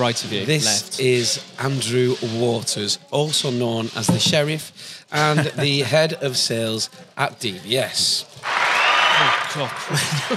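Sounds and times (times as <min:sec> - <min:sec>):
speech: 0:00.0 - 0:08.5, 0:09.2 - 0:10.3
laughter: 0:05.1 - 0:06.4, 0:09.1 - 0:10.3
loud dense crowd applause: 0:08.4 - 0:10.3.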